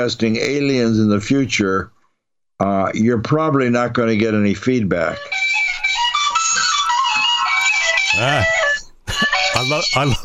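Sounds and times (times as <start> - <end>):
speech: 0.0 - 2.0, 2.6 - 5.4, 8.2 - 8.6, 9.6 - 10.2
phone ringtone playing a bright quick-stepping Irish folk jig melody: 5.0 - 10.2.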